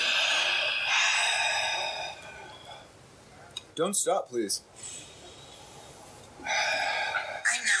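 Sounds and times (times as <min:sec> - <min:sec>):
long deep breath drawn in: 0:00.0 - 0:02.9, 0:04.8 - 0:07.6
speech: 0:03.8 - 0:05.1.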